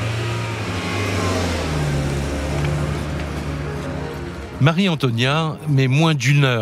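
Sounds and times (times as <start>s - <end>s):
car engine revving and accelerating at full speed: 0.0s - 5.1s
speech: 4.6s - 6.6s.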